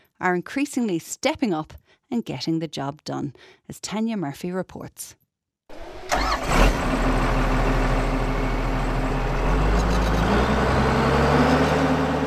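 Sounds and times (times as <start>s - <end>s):
speech: 0.2s - 6.8s
power haul tractor with cane bin engine cranking and rumbling: 5.7s - 12.2s.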